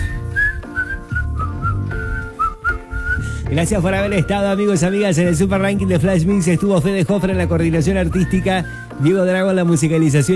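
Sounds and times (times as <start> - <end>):
low instrumental backing: 0.0 - 10.3
person whistling a tune: 0.0 - 10.3
speech: 3.5 - 10.3.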